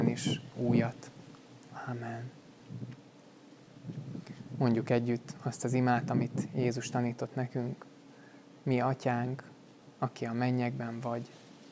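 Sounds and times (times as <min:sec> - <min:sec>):
soft wind blowing outdoors: 0:00.0 - 0:01.3, 0:01.9 - 0:03.0, 0:03.7 - 0:07.7
speech: 0:00.2 - 0:01.2, 0:01.8 - 0:03.0, 0:03.9 - 0:07.9, 0:08.6 - 0:11.4.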